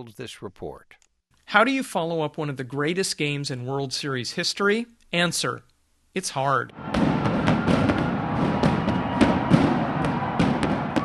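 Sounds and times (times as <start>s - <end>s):
speech: 0.0s - 7.1s
dense roar of stadium crowd after a World Series game: 6.7s - 11.0s
stadium fireworks cracking and thumping: 6.8s - 11.0s.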